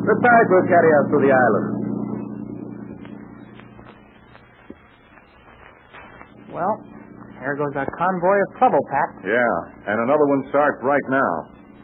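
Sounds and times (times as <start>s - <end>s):
motorboat engine droning: 0.0s - 11.8s
speech: 0.1s - 1.8s, 6.5s - 11.5s.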